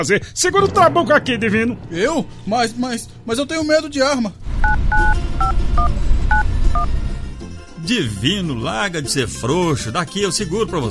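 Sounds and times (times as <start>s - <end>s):
speech: 0.0s - 7.1s, 7.8s - 10.9s
constant low rumbling background: 0.3s - 8.6s
two-tone telephone keypad beeps: 4.6s - 6.9s.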